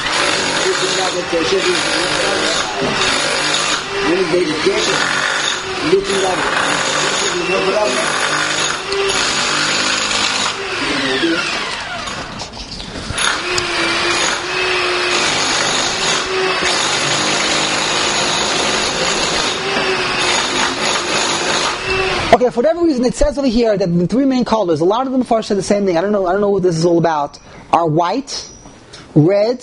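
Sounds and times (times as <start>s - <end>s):
power drill whine: 0.0s - 22.4s
speech: 1.1s - 3.3s, 4.0s - 8.3s, 11.1s - 11.6s, 22.4s - 28.5s, 29.2s - 29.6s.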